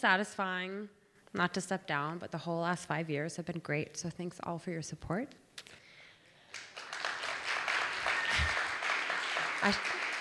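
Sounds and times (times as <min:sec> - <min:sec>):
speech: 0:00.0 - 0:05.8, 0:09.6 - 0:10.1
crowd applauding: 0:06.5 - 0:10.1.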